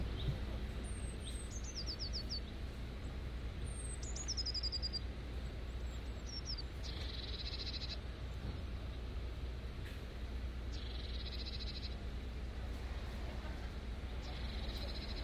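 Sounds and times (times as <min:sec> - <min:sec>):
garden birds singing: 0:00.0 - 0:08.1, 0:10.6 - 0:12.2, 0:13.6 - 0:15.2
steady low outdoor rumble: 0:00.0 - 0:15.2.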